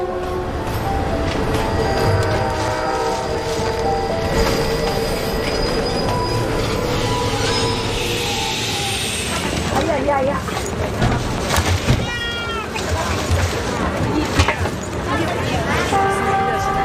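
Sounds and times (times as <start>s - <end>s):
train rumbling on winding mountain railway: 0.0s - 16.8s
high metallic train wheel squeal: 4.3s - 9.8s.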